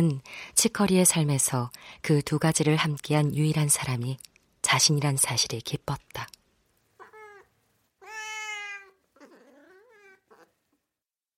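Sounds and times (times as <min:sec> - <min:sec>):
speech: 0:00.0 - 0:06.4
cat meowing: 0:07.0 - 0:10.6.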